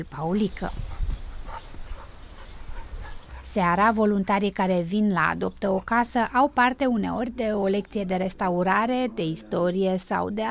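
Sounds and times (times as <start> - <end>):
speech: 0.0 - 0.9, 3.6 - 10.4
village dogs barking and whimpering while playing in a courtyard: 1.1 - 4.5.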